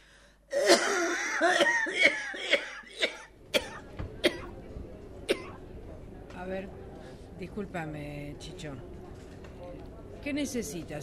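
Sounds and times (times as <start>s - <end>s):
feverish man coughing harshly: 0.5s - 4.5s
speech: 1.4s - 2.3s, 7.6s - 9.0s, 10.2s - 11.0s.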